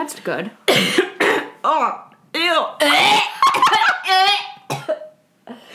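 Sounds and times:
speech: 0:00.1 - 0:01.0, 0:01.6 - 0:03.4
wet phlegmy coughing: 0:00.7 - 0:01.6, 0:02.8 - 0:04.1, 0:04.7 - 0:05.1.

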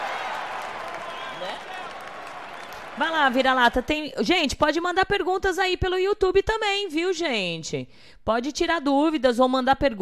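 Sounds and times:
voice rising over clapping: 0:00.0 - 0:03.0
round of applause: 0:00.0 - 0:04.0
speech: 0:03.0 - 0:10.0.

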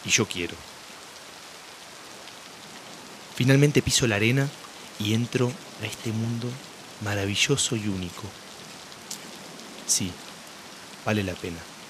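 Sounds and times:
speech: 0:00.0 - 0:00.8, 0:03.4 - 0:08.4, 0:09.9 - 0:10.2, 0:11.0 - 0:11.7
heavy tropical rain pattering on surfaces: 0:00.0 - 0:11.8.

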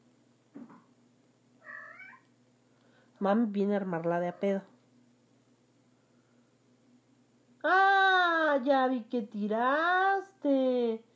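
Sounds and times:
domestic cat chirping: 0:01.6 - 0:02.3
speech: 0:03.2 - 0:04.7, 0:08.6 - 0:11.1.

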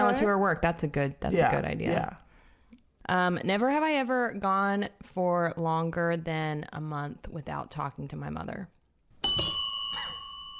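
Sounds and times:
speech: 0:00.2 - 0:02.2, 0:03.1 - 0:08.8
two bicycle-style bells ringing: 0:09.2 - 0:10.5.

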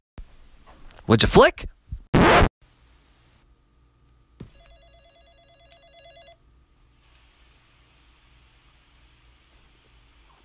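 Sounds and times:
speech: 0:01.1 - 0:01.7
telephone ringing with electronic trill: 0:04.5 - 0:06.4.

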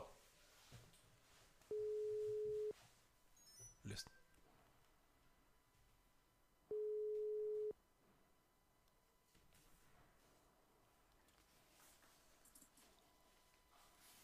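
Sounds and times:
telephone ringback tone on an outgoing call: 0:01.7 - 0:02.7, 0:06.7 - 0:07.7.

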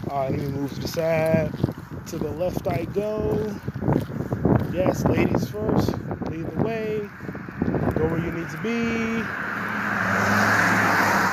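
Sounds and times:
speech: 0:00.1 - 0:09.4
car engine and tire hum passing by on a road: 0:07.1 - 0:11.3.

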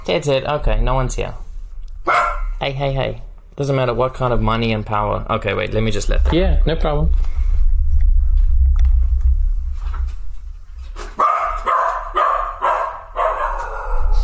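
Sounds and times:
speech: 0:00.0 - 0:01.4, 0:02.0 - 0:07.3
low rumbling noise: 0:00.0 - 0:11.7
several dogs barking at a delivery: 0:02.0 - 0:02.6, 0:11.1 - 0:14.2.

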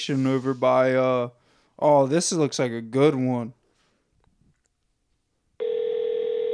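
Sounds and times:
speech: 0:00.0 - 0:03.6
ringback tone of an outgoing call through a phone line: 0:05.6 - 0:06.5.

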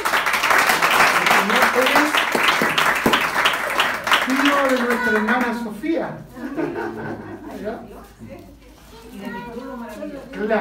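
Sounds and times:
church audience applauding to greet a visiting man: 0:00.0 - 0:05.6
speech: 0:04.6 - 0:08.6, 0:09.2 - 0:10.6
laughter: 0:06.4 - 0:07.8.

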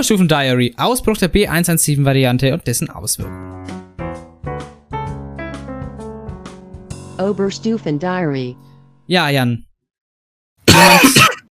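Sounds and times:
speech: 0:00.0 - 0:04.0, 0:07.2 - 0:09.7, 0:10.7 - 0:11.3
throat clearing: 0:10.6 - 0:11.4.

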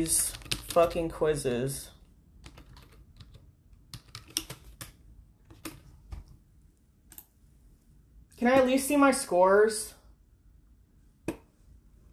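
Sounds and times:
speech: 0:00.0 - 0:01.9, 0:08.4 - 0:10.0
typing on a computer keyboard: 0:00.2 - 0:00.9, 0:02.4 - 0:05.9.

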